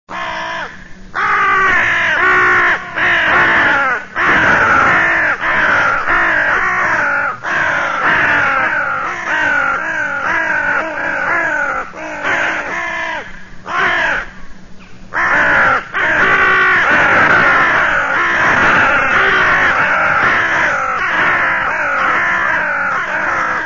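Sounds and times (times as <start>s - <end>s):
crow calling: 0.1s - 23.6s.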